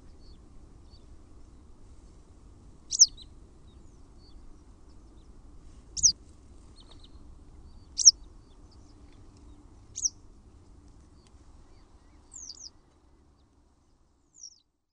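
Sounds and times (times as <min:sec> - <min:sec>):
faint low background hum: 0:00.0 - 0:14.9
Western Yellow Wagtail calling with thin high downslurred notes: 0:02.9 - 0:03.2, 0:06.0 - 0:06.2, 0:07.9 - 0:08.1, 0:10.0 - 0:10.2, 0:12.3 - 0:12.7.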